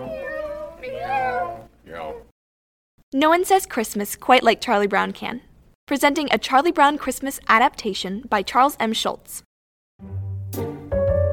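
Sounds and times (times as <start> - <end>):
person imitating a cat meowing: 0.0 - 2.3
speech: 3.1 - 10.7.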